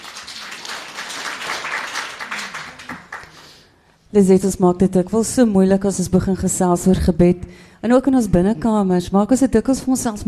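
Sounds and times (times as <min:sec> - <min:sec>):
crowd applauding after a reading: 0:00.0 - 0:03.6
speech: 0:04.1 - 0:10.2.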